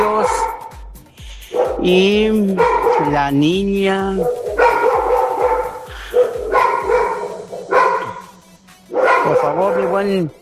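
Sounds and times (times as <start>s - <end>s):
dog barking: 0.0s - 0.8s, 1.5s - 10.1s
speech: 1.8s - 4.4s, 9.5s - 10.4s.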